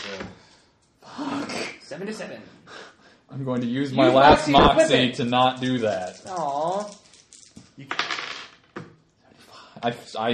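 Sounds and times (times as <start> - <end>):
speech: 2.0 - 7.0, 7.8 - 8.0, 9.8 - 10.3
dice clattering across a hard tabletop in a tabletop role-playing game: 4.5 - 8.9.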